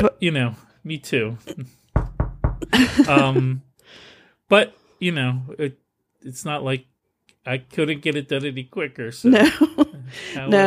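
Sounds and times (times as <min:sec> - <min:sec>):
speech: 0:00.0 - 0:01.8, 0:02.6 - 0:10.6
knuckles knocking on wood: 0:02.0 - 0:02.8
laughter: 0:02.6 - 0:03.6, 0:09.3 - 0:10.6.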